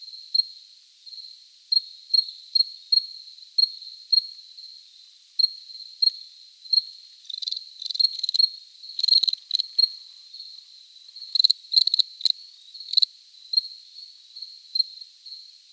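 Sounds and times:
cricket trilling steadily at a high pitch: 0:07.3 - 0:10.6, 0:11.2 - 0:13.7.

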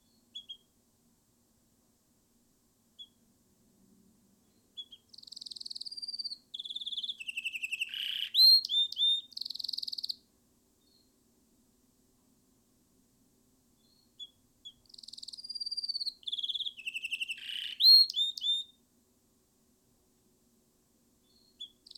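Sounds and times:
canary song: 0:00.0 - 0:00.7, 0:03.0 - 0:03.2, 0:04.4 - 0:11.2, 0:13.8 - 0:18.8, 0:21.2 - 0:21.9.

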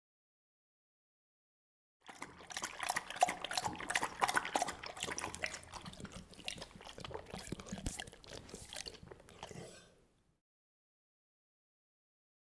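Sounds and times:
dog drinking water with rapid wet lapping: 0:02.0 - 0:10.0.

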